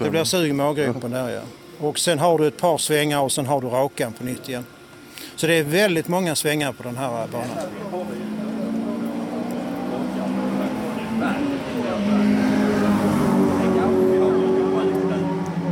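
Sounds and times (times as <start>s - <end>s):
speech: 0.0s - 4.8s, 5.4s - 8.0s
two stripped standard race cars with roll cages droning on a track: 7.0s - 15.7s.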